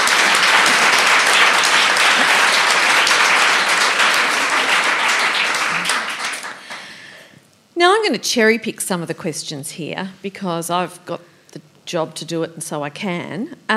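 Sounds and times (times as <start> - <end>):
crowd applauding a panelist: 0.0 - 7.2
speech: 8.0 - 13.7.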